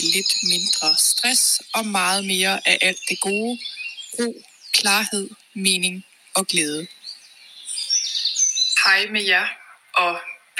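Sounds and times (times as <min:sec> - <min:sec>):
speech: 0:00.0 - 0:07.0, 0:08.8 - 0:10.5
birds singing outdoors in a chorus of chirps and warbling: 0:00.0 - 0:10.5.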